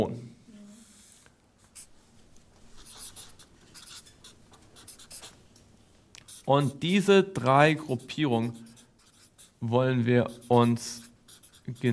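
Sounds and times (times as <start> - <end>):
scratchy strokes of a word being written by hand: 2.7 - 5.4, 6.2 - 11.9
speech: 6.5 - 8.7, 9.6 - 11.1, 11.7 - 11.9.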